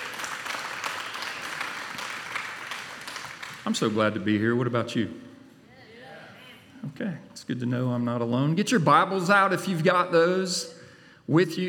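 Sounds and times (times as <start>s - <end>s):
large crowd applauding: 0.0s - 4.0s
speech: 3.6s - 5.3s, 7.0s - 11.6s.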